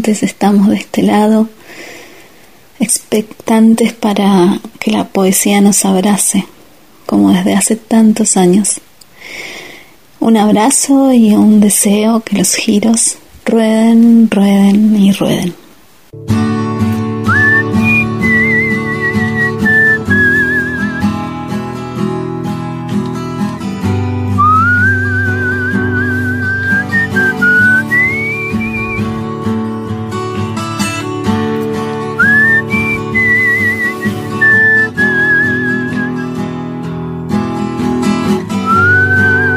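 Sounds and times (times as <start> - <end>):
speech: 0.0 - 1.6, 2.8 - 6.5, 7.1 - 9.6, 10.2 - 15.6, 16.2 - 16.6
guitar-led musical accompaniment: 16.1 - 39.5
person whistling a melody: 17.3 - 21.2, 24.4 - 29.2, 32.2 - 36.3, 38.6 - 39.5.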